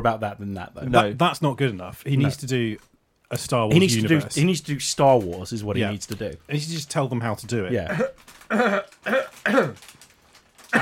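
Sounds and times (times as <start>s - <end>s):
speech: 0.0s - 10.0s
harsh coughs with throat clearing: 7.9s - 9.8s.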